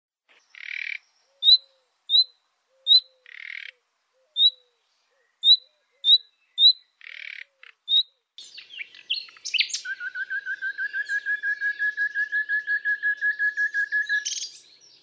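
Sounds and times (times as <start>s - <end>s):
Common nightingale giving low rasping croaking bursts: 0.3s - 15.0s
Common nightingale giving short sharp high whistled notes: 8.4s - 14.7s.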